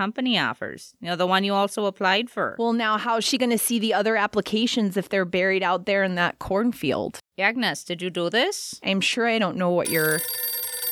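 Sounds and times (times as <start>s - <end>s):
speech: 0.0s - 10.6s
telephone bell ringing loudly: 9.9s - 10.8s.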